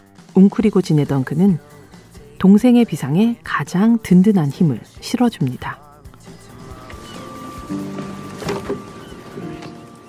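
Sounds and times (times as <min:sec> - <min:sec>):
speech: 0:00.4 - 0:01.8, 0:02.4 - 0:05.8
small boat motor droning on water: 0:06.3 - 0:10.0.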